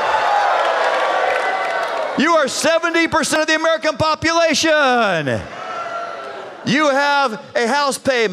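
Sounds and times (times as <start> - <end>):
audience cheering and shouting: 0.0 - 2.8, 5.4 - 6.8
speech: 2.2 - 5.6, 6.6 - 8.3.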